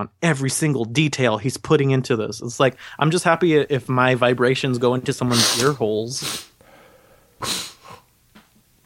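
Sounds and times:
speech: 0:00.0 - 0:06.5, 0:07.4 - 0:07.6
sneeze: 0:05.3 - 0:06.6, 0:07.4 - 0:08.0
sniff: 0:05.3 - 0:08.1.

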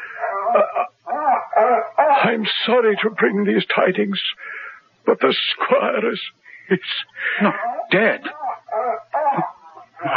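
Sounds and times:
dog barking and yelping: 0:00.0 - 0:02.4, 0:07.4 - 0:10.1
speech: 0:02.2 - 0:08.4, 0:09.4 - 0:10.1.

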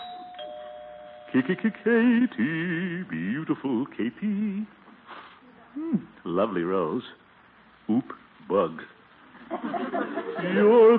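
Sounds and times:
electronic doorbell chiming: 0:00.0 - 0:01.9
speech: 0:01.3 - 0:04.8, 0:05.8 - 0:07.2, 0:07.9 - 0:08.9, 0:09.5 - 0:10.9
faint hiss: 0:01.4 - 0:09.4
laughter: 0:09.4 - 0:10.9.

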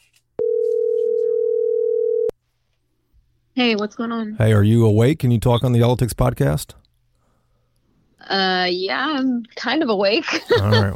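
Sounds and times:
electronic ring tone on a phone line: 0:00.4 - 0:02.3
speech: 0:03.6 - 0:06.8, 0:08.2 - 0:10.9
laughter: 0:10.3 - 0:10.9.

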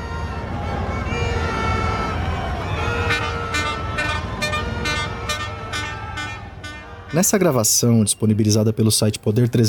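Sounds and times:
military vehicle engine noise: 0:00.0 - 0:07.4
military vehicle horns honking in a parade: 0:00.0 - 0:07.5
dense rumbling crowd of spectators: 0:00.0 - 0:07.9
speech: 0:07.1 - 0:09.6.

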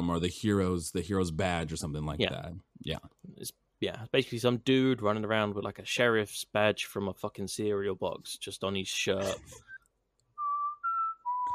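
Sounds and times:
speech: 0:00.0 - 0:09.7
person whistling a western sheriff-style tune: 0:10.4 - 0:11.5.

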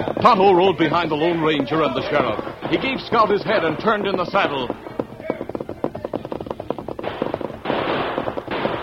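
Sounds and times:
speech: 0:00.2 - 0:04.9
warning gunshots as radio drama sound effects: 0:01.9 - 0:05.5, 0:06.4 - 0:08.8.

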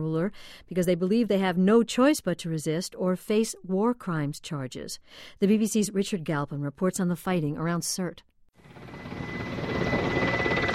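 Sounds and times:
speech: 0:00.0 - 0:09.3
helicopter landing at a military base: 0:08.6 - 0:10.7.

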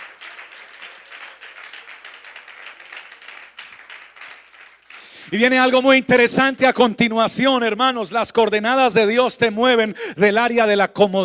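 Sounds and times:
crowd applauding: 0:00.0 - 0:05.4
speech: 0:05.2 - 0:11.2.

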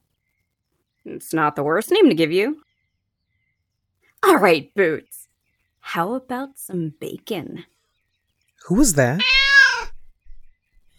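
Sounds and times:
speech: 0:01.0 - 0:02.7, 0:04.2 - 0:05.2, 0:05.8 - 0:07.8, 0:08.6 - 0:09.3
cat meowing: 0:09.2 - 0:10.0.

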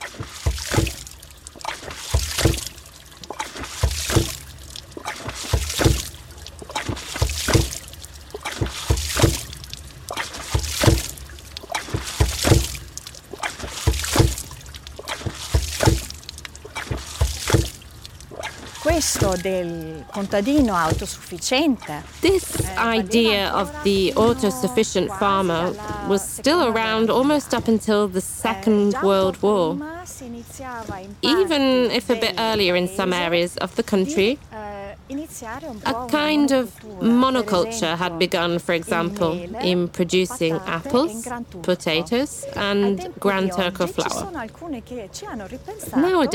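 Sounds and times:
hydraulic ram pump valve thumping: 0:00.0 - 0:28.0
rushing splashing water: 0:00.0 - 0:44.4
speech: 0:19.2 - 0:34.5, 0:35.4 - 0:46.3.

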